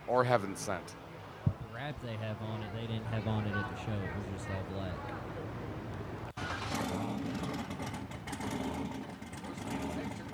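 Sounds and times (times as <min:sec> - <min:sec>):
speech: 0:00.1 - 0:01.0, 0:01.8 - 0:05.3
turbocharged car engine with front and back turbos rumbling through mufflers: 0:06.3 - 0:10.3.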